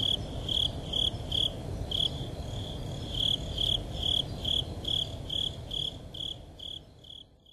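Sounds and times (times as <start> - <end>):
Japanese burrowing cricket chirping: 0.0 - 7.5.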